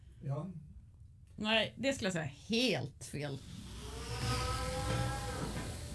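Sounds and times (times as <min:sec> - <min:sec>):
speech: 0:00.2 - 0:00.7, 0:01.4 - 0:03.6
cow mooing: 0:03.9 - 0:05.8.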